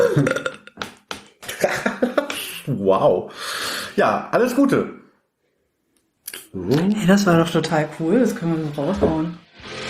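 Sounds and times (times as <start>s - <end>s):
person burping: 0.0s - 0.8s
speech: 0.2s - 0.5s, 2.8s - 5.0s, 6.5s - 9.7s.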